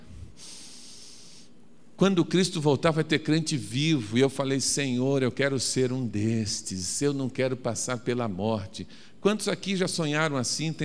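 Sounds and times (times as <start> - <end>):
deep breath drawn in through the nose: 0.0 - 1.6
speech: 2.0 - 10.8.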